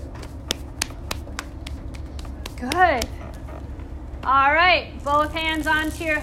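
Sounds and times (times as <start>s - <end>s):
low hum: 0.0s - 6.2s
left hand patting down the right leg during an exercise routine: 0.1s - 3.4s
speech: 2.6s - 3.2s, 4.2s - 6.2s.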